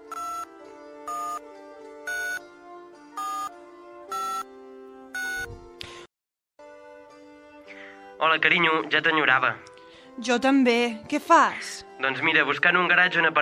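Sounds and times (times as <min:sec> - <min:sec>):
mobile phone ringing with electronic ringtone: 0:00.0 - 0:01.5, 0:02.1 - 0:02.5, 0:03.2 - 0:04.5, 0:05.2 - 0:05.5
speech: 0:08.2 - 0:13.4.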